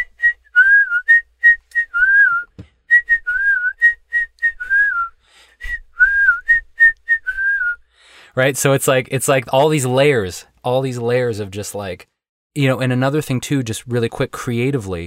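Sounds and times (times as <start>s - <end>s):
bright whistled melody hook of a song: 0.0s - 7.8s
speech: 8.4s - 15.0s.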